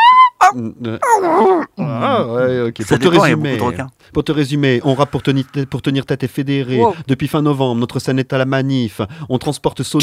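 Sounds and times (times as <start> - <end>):
person vocalising wailing creature cries: 0.0 - 2.2
speech: 0.5 - 10.0.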